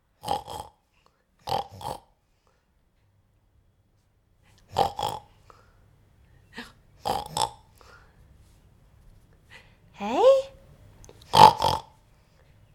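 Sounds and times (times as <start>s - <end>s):
person imitating pig oinks: 0.2s - 0.8s, 1.4s - 2.1s, 4.7s - 5.3s, 7.0s - 7.7s, 11.3s - 12.0s.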